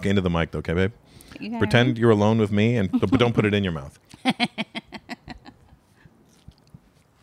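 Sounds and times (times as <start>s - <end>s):
speech: 0.0s - 4.7s
wet crunchy chewing of watermelon: 6.2s - 7.2s.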